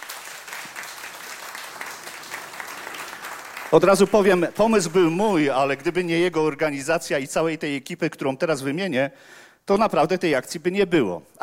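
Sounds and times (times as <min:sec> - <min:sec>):
audience applauding: 0:00.0 - 0:06.1
speech: 0:03.7 - 0:11.4.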